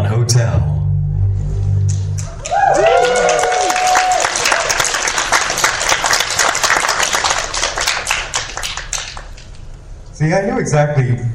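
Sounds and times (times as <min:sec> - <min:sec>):
speech: 0:00.3 - 0:00.7, 0:10.2 - 0:11.3
audience applause: 0:01.9 - 0:09.6
swooping whoop-like tone: 0:02.0 - 0:04.8.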